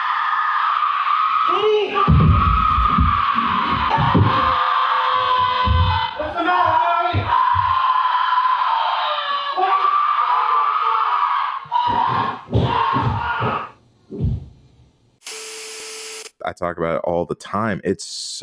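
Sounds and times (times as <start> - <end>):
distorted demonic scream from a horror film: 0.0 - 13.7
speech: 16.6 - 18.4.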